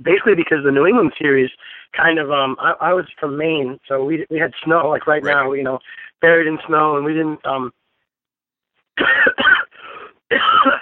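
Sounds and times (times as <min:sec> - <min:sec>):
speech: 0:00.0 - 0:07.8, 0:09.0 - 0:09.7, 0:10.3 - 0:10.8
harsh hacking cough from a person who has been ill: 0:09.0 - 0:10.8.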